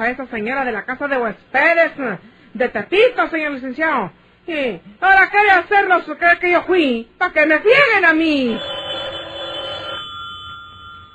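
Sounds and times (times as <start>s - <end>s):
speech: 0.0s - 8.8s
telephone ringing in a secret service office: 8.5s - 11.1s.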